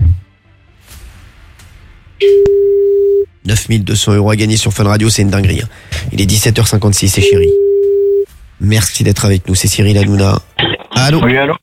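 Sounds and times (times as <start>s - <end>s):
low sound: 1.0s - 11.6s
ringback tone of an outgoing phone call: 2.2s - 3.3s, 7.2s - 8.3s
speech: 3.5s - 7.6s, 8.6s - 11.6s.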